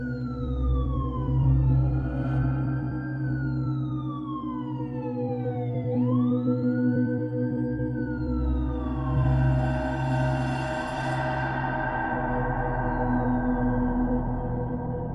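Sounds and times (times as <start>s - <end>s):
wailing ambulance and police sirens: 0.0s - 15.1s.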